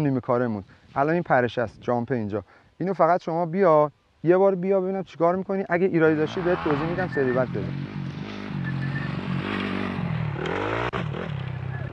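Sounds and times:
speech: 0.0s - 8.0s
dirt bike engine revving on a jump: 6.0s - 11.9s.

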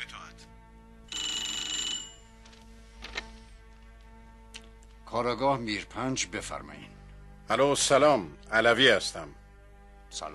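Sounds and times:
telephone ringing with an electronic trill: 1.1s - 2.4s
speech: 5.1s - 9.4s, 10.1s - 10.3s.

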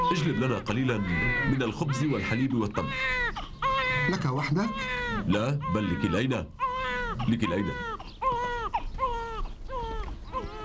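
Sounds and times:
hungry infant held in a man's arms crying: 0.0s - 10.6s
speech: 0.1s - 6.6s, 7.2s - 8.0s.

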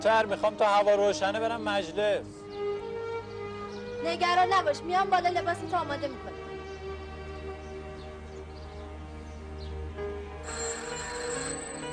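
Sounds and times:
speech: 0.0s - 2.4s, 4.0s - 6.4s
telephone ringing with a steady electronic tone: 10.4s - 11.9s.

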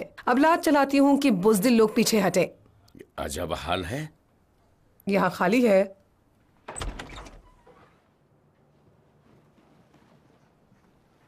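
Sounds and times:
speech: 0.2s - 2.6s, 3.2s - 4.2s, 5.0s - 6.0s
door opening with a rattling scrape: 6.6s - 8.2s
faint high door squeak: 6.7s - 8.1s.

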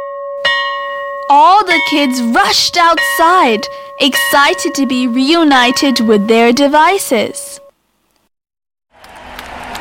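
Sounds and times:
school bell ringing for break: 0.4s - 7.7s
speech: 1.9s - 7.4s.

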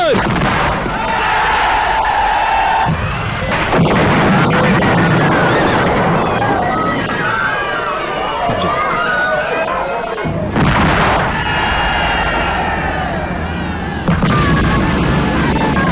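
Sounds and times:
artillery gunfire in a war scene: 0.1s - 1.7s, 2.5s - 7.1s, 10.5s - 12.1s, 14.0s - 15.8s
people shouting: 0.8s - 10.6s, 11.1s - 15.8s.

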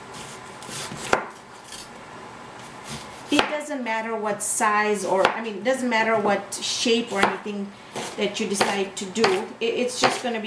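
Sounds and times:
knife slicing onions thinly against the board: 0.1s - 1.8s, 2.6s - 3.6s, 7.2s - 10.3s
speech: 3.6s - 10.4s.

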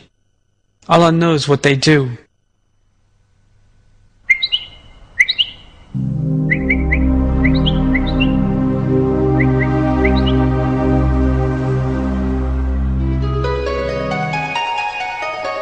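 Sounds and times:
speech: 0.8s - 2.2s
birds chirping and singing: 4.2s - 15.5s
loud steady low droning hum: 5.8s - 14.5s.

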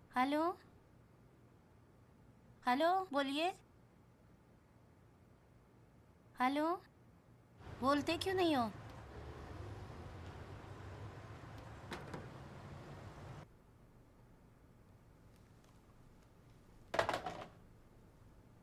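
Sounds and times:
speech: 0.2s - 0.7s, 2.6s - 3.6s, 6.4s - 6.9s, 7.8s - 8.8s
rumble of passing car traffic: 7.6s - 13.4s.

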